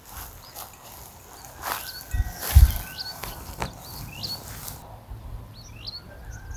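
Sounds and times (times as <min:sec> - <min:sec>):
Pyrocephalus rubinus calling: 0:00.0 - 0:04.8.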